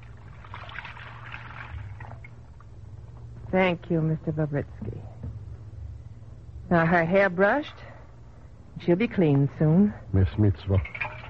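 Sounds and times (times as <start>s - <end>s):
water sloshing in a basin: 0.0s - 2.7s, 10.8s - 11.2s
steady low hum: 0.0s - 11.2s
speech: 3.5s - 5.2s, 6.7s - 7.9s, 8.8s - 11.0s.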